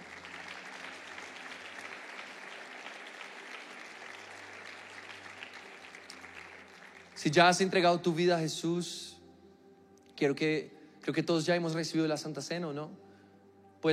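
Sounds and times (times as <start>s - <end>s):
church audience applauding: 0.0s - 7.8s
speech: 7.2s - 9.1s, 10.2s - 13.1s.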